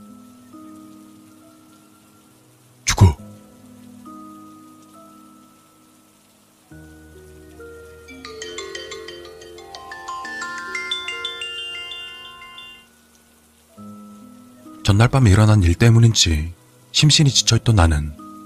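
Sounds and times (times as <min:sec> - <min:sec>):
mobile phone ringtone with tinkling melody: 0:08.1 - 0:12.9
speech: 0:14.9 - 0:18.2.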